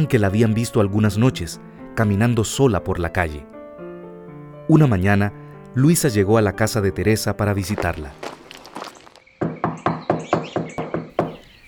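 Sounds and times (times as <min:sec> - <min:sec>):
speech: 0:00.0 - 0:03.6, 0:04.7 - 0:08.4
faint chirping: 0:09.2 - 0:11.6
knocking on a door: 0:09.4 - 0:11.4.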